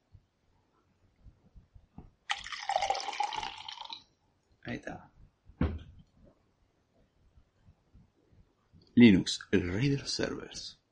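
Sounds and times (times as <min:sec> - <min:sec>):
person sipping water with wet clicks: 0:02.3 - 0:04.0
speech: 0:04.9 - 0:05.1, 0:09.0 - 0:10.8.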